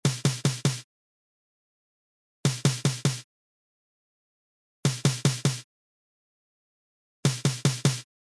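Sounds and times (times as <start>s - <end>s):
snare drum beat in a fanfare band: 0.0s - 0.8s, 2.5s - 3.2s, 4.9s - 5.6s, 7.3s - 8.0s.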